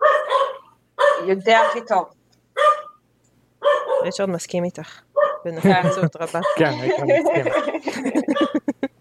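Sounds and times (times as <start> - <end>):
dog barking: 0.0 - 3.0, 3.6 - 4.2, 5.2 - 8.7
speech: 1.2 - 2.2, 4.0 - 8.6
laughter: 5.6 - 8.9.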